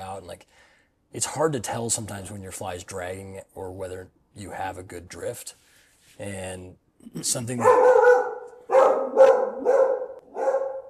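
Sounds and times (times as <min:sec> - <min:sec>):
speech: 0:00.2 - 0:08.3
dog barking: 0:07.6 - 0:10.8.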